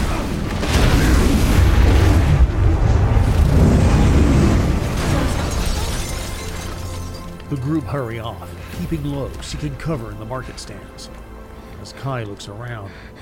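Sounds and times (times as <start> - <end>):
van exploding into billowing fireballs with deep roaring rumble: 0.0 - 5.6
speech: 7.8 - 13.2.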